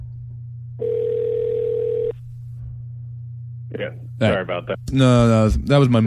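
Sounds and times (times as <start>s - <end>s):
constant low hum: 0.0s - 5.0s
phone ringback tone: 0.8s - 2.2s
speech: 3.8s - 6.0s.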